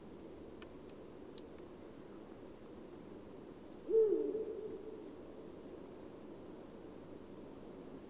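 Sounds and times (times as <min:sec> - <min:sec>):
faint background hiss: 0:00.0 - 0:08.0
Eurasian eagle-owl hoot: 0:03.9 - 0:05.1.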